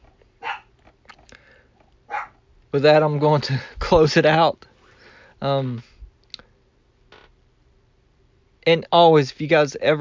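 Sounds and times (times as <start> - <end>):
dog barking: 0.4 - 0.7, 2.1 - 2.4
speech: 2.7 - 4.7, 5.4 - 5.9, 8.7 - 9.9.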